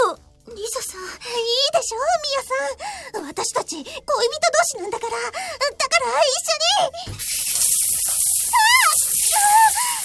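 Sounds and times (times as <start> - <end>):
speech: 1.2 - 7.4
shower spraying water: 7.1 - 10.0
high-pitched vocal squeals: 8.4 - 10.0.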